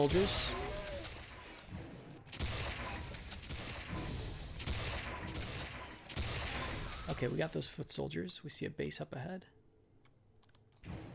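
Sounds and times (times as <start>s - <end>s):
speech: 0.0s - 0.6s, 7.2s - 9.6s
gunfire in a military shooter video game: 0.0s - 7.4s, 10.8s - 11.1s.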